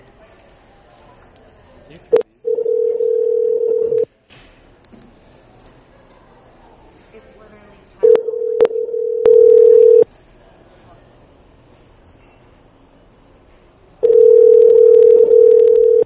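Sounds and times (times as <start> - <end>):
faint murmur: 0.0 - 16.0
telephone ringback tones over the line: 2.4 - 4.1, 8.0 - 10.0, 14.0 - 16.0.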